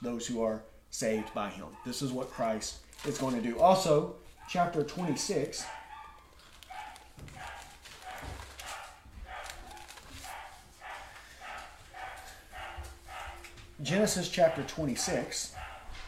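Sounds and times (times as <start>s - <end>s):
speech: 0.0s - 5.8s, 13.8s - 15.7s
dog barking: 1.1s - 2.2s, 4.4s - 16.0s.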